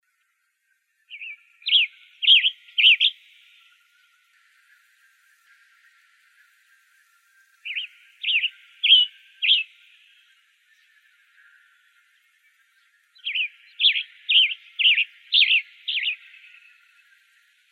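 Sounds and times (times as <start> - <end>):
western tanager calling in Arizona: 1.1 - 4.1, 7.6 - 17.6.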